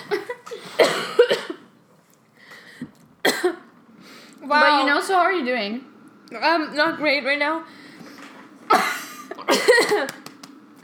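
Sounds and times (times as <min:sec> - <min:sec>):
harsh strained coughing after nearly choking: 0:00.0 - 0:01.7, 0:03.2 - 0:03.7, 0:08.7 - 0:10.1
speech: 0:04.5 - 0:07.8.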